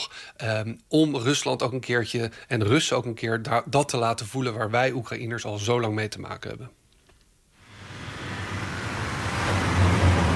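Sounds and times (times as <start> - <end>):
speech: 0.4 - 6.8
broad roar of military vehicle engines and tyres with a low rumble: 7.6 - 10.3
military vehicles including infantry vehicles, Humvees and a tank on a trailer driving along a road: 7.6 - 10.3.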